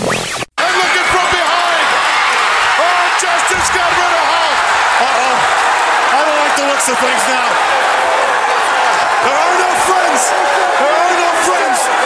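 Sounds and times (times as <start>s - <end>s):
wrestling arena crowd roaring and cheering: 0.6s - 12.0s
speech: 6.9s - 7.6s.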